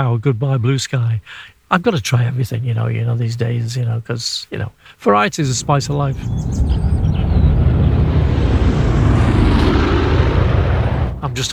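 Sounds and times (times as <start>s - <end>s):
speech: 0.0s - 6.9s, 11.4s - 11.5s
airplane flying overhead: 5.4s - 11.5s.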